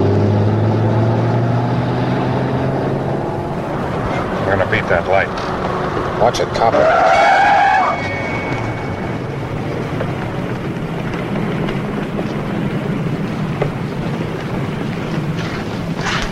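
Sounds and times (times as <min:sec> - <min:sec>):
car engine and road noise: 0:00.0 - 0:16.3
car tires skidding under hard braking: 0:03.6 - 0:16.3
speech: 0:04.7 - 0:05.6, 0:06.2 - 0:07.3.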